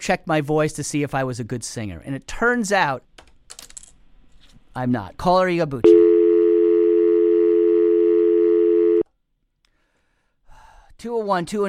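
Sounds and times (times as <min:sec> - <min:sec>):
speech: 0:00.0 - 0:03.2, 0:04.8 - 0:06.0, 0:11.0 - 0:11.6
droning telephone tone as a caller's line drops: 0:05.9 - 0:09.0.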